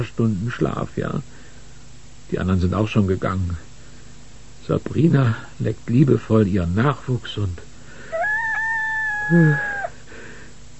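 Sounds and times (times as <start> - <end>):
speech: 0.0 - 1.4, 2.3 - 3.7, 4.7 - 7.7, 9.3 - 9.7
rooster crowing: 8.1 - 10.0.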